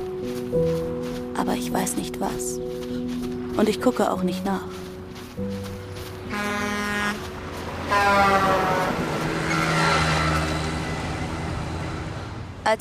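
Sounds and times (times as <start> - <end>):
rumbling road noise: 0.0 - 12.8
speech: 1.4 - 3.0, 3.6 - 5.5, 7.9 - 8.8
car braking to a stop with loud sustained tonal brake squeals: 7.9 - 10.8.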